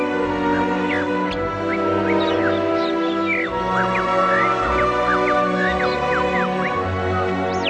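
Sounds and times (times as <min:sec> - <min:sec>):
bird singing quick bright whistled notes and sliding chirps: 0:00.0 - 0:07.6.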